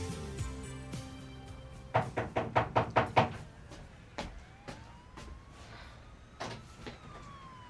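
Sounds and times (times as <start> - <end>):
knocking on a door: 1.9 - 3.4.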